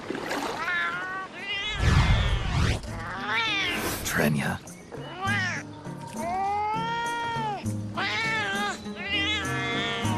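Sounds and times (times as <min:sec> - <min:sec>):
cat meowing: 0:00.6 - 0:03.9, 0:05.1 - 0:05.6, 0:06.2 - 0:10.1
speech: 0:04.2 - 0:04.7.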